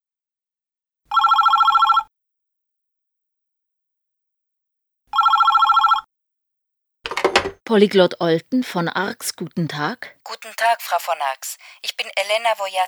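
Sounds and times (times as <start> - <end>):
telephone ringing with a bright rapid electronic trill: 1.1 - 2.1, 5.2 - 6.0, 7.1 - 12.8
speech: 7.7 - 12.8.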